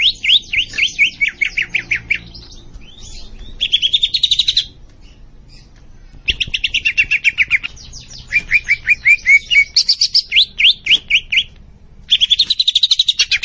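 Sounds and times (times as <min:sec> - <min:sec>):
leafbird singing actively in bursts of bright chirping notes: 0:00.0 - 0:13.4.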